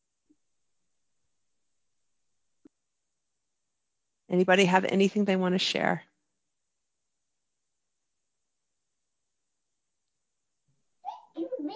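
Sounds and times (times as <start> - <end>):
speech: 4.3 - 6.1
toddler babbling: 11.1 - 11.7.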